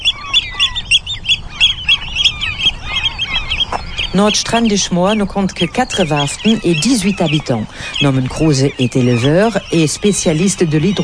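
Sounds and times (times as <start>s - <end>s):
Eurasian oystercatcher alarm calls on the Hallig island of Nordstrandischmoor: 0.0s - 11.0s
speech: 4.1s - 11.0s.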